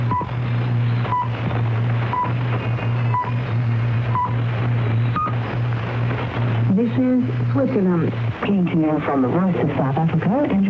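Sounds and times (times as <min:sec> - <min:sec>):
Swiss chronometer radio time signal pips: 0:00.0 - 0:01.5, 0:02.1 - 0:05.4
low hum: 0:00.0 - 0:10.6
speech: 0:09.0 - 0:10.6.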